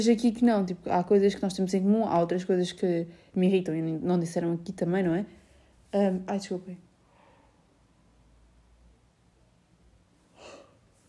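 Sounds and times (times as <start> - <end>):
speech: 0.0 - 6.8
person yawning: 10.4 - 10.7.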